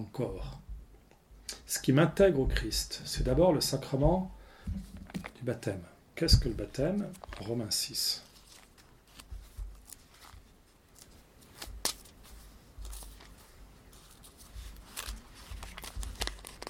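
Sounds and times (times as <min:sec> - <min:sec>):
speech: 0:00.0 - 0:00.6, 0:01.7 - 0:08.3
thin crisp Bible paper pages being turned: 0:04.8 - 0:05.4, 0:06.4 - 0:16.6.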